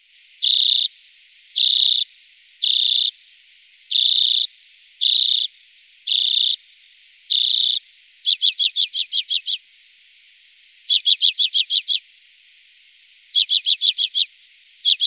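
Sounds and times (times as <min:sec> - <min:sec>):
common redpoll giving buzzy wheezing calls: 0:00.4 - 0:00.9, 0:01.6 - 0:03.2, 0:03.9 - 0:06.6, 0:07.3 - 0:09.6, 0:10.9 - 0:12.1, 0:13.3 - 0:15.0.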